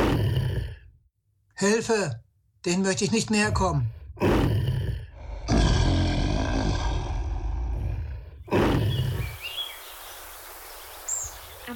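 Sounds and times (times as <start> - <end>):
speech: 1.6 - 4.4
lions roaring: 4.2 - 9.3
faint bird chirps: 8.8 - 11.7.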